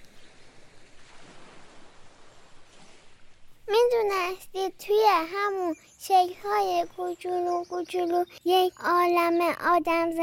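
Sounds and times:
ocean surf: 0.0s - 4.0s
speech: 4.0s - 10.2s.

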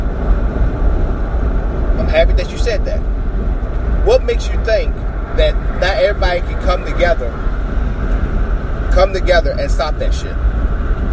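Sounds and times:
heavy engine rumbling: 0.0s - 11.1s
speech: 2.2s - 3.2s, 4.1s - 7.4s, 8.9s - 10.4s.

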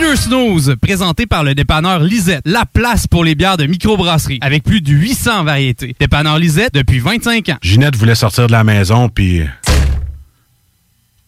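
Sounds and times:
speech: 0.0s - 10.0s
woman walking into a freshly washed glass patio door: 9.6s - 10.3s.

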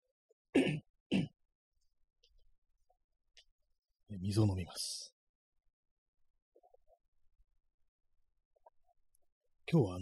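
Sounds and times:
throat clearing: 0.5s - 1.4s
speech: 4.2s - 5.1s, 9.7s - 9.9s.

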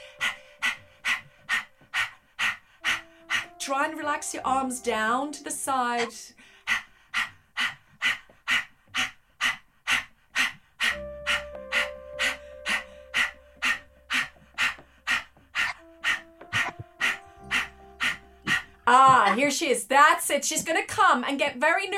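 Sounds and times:
person panting rapidly with tongue out: 0.0s - 4.1s, 6.0s - 19.5s
speech: 3.7s - 6.5s, 19.4s - 21.9s.

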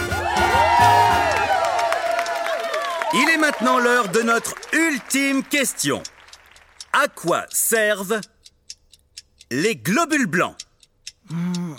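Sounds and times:
excited high-pitched shouts and whoops: 0.0s - 4.4s
audience cheering and applause: 0.0s - 6.9s
speech: 3.1s - 6.1s, 6.9s - 8.3s, 9.5s - 10.6s, 11.3s - 11.7s.

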